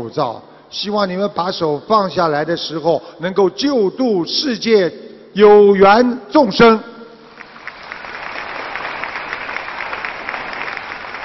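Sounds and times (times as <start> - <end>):
speech: 0.0 - 6.9
large crowd applauding at a Buddhist followers' gathering: 7.3 - 11.2.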